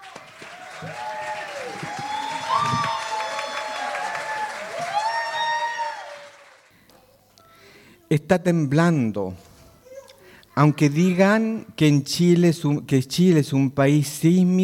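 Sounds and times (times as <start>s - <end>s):
audience applause at a concert: 0.0s - 6.7s
speech: 0.8s - 1.0s, 8.1s - 9.5s, 10.6s - 14.6s.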